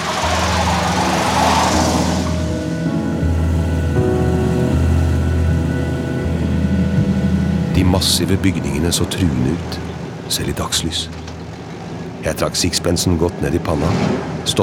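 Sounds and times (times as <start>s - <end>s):
van engine droning as it is driven: 0.0s - 14.6s
speech: 7.8s - 11.3s, 12.2s - 14.6s.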